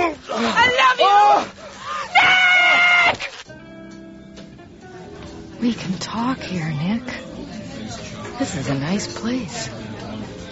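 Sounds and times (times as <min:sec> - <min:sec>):
woman screaming loudly: 0:00.4 - 0:03.3
speech: 0:05.6 - 0:07.6, 0:08.4 - 0:10.0.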